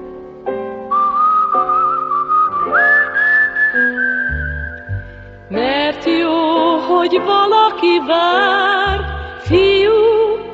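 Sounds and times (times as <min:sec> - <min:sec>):
steady musical accompaniment: 0:00.0 - 0:10.5
person whistling a bright wavering melody: 0:00.9 - 0:05.3
speech: 0:06.9 - 0:10.0.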